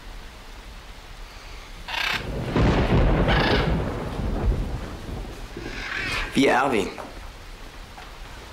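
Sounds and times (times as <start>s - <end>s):
steady rain during a thunderstorm: 0.0s - 8.5s
thunder rumbling during a thunderstorm: 1.9s - 8.5s
speech: 6.4s - 7.0s.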